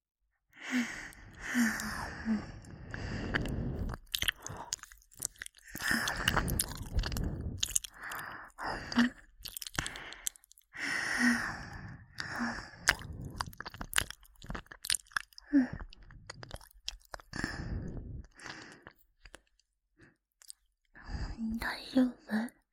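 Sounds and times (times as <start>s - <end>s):
soft breaths and gasps: 0.6s - 14.6s, 15.2s - 22.7s
wet crunchy biting sounds: 3.4s - 8.2s, 8.9s - 10.6s, 12.8s - 15.4s.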